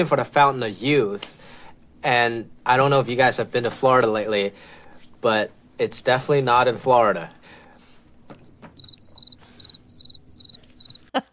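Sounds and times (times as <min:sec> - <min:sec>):
speech: 0:00.0 - 0:07.4
crickets chirping sound effect: 0:08.8 - 0:11.0.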